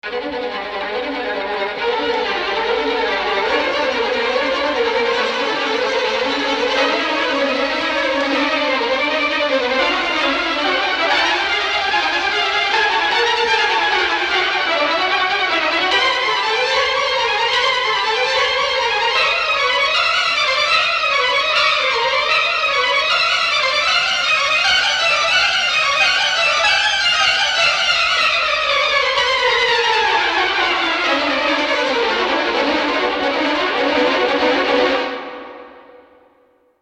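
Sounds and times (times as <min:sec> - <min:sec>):
violins playing phrases: 0:00.0 - 0:36.0.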